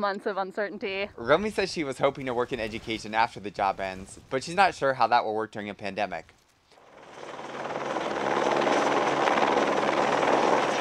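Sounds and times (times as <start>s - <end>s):
speech: 0.0s - 6.4s
helicopter slinging supplies overhead: 6.8s - 10.7s.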